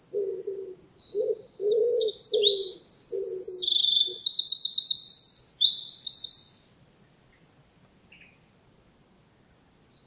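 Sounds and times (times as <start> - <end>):
Troglodytes troglodytes Eurasian wren giving very high chattering notes: 1.9 - 5.7.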